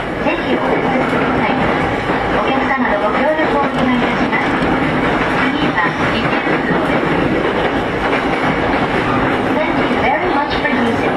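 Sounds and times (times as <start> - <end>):
commuter train rumbling heard from inside the carriage: 0.0 - 11.1
faint rhythmic rail clatter: 0.0 - 11.1.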